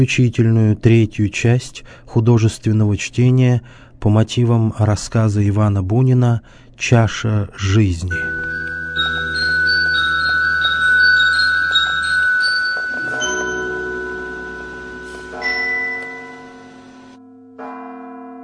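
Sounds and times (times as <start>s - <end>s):
speech: 0.0s - 8.5s
church bells pealing over a town: 8.1s - 18.4s.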